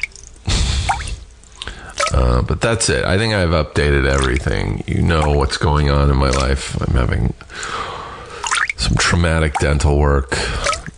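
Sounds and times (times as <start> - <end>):
water dripping with splashing drops: 0.0 - 2.4, 4.0 - 6.7, 8.4 - 9.8, 10.4 - 10.9
speech: 2.1 - 7.9, 8.8 - 10.6.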